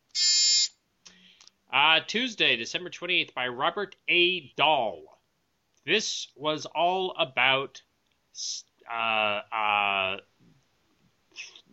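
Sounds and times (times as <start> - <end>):
loud steady electronic buzzer: 0.1 - 0.8
speech: 1.7 - 5.1, 5.8 - 10.6.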